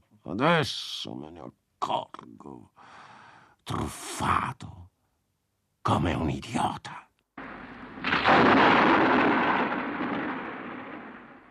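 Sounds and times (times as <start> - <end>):
speech: 0.2 - 3.0, 3.7 - 4.8, 5.8 - 7.0
loud crack of thunder from a thunderstorm: 7.4 - 11.4.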